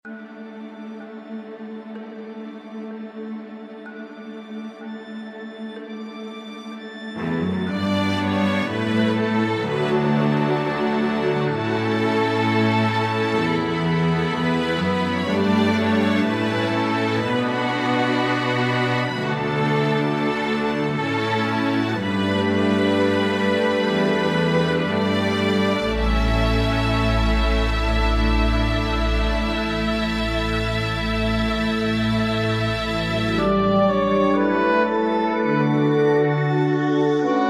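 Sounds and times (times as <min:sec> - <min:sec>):
large orchestra playing: 0:06.7 - 0:37.4.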